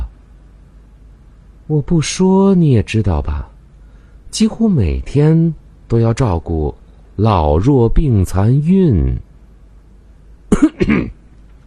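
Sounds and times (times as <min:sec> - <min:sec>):
speech: 0:01.7 - 0:03.5, 0:04.3 - 0:09.3, 0:10.5 - 0:11.2
man coughing with a throaty rasp: 0:10.5 - 0:11.2.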